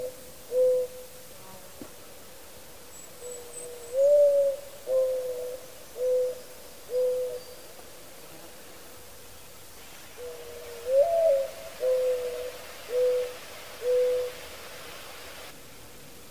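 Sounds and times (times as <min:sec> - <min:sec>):
Mourning dove Zenaida macroura soft low hooting coos: 0:00.0 - 0:01.2, 0:03.2 - 0:07.7, 0:10.1 - 0:15.0.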